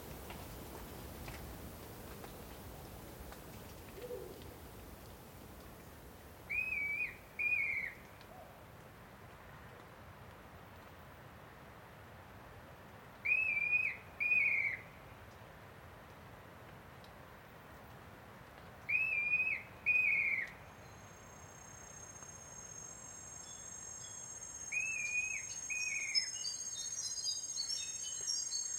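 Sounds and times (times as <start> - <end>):
montane rainforest ambience hush in Ethiopia: 0.0 - 10.0, 18.9 - 28.7
bright clear paired bird whistle in Ethiopian montane rainforest: 6.5 - 8.0, 13.3 - 14.8, 18.9 - 20.5, 23.5 - 28.7.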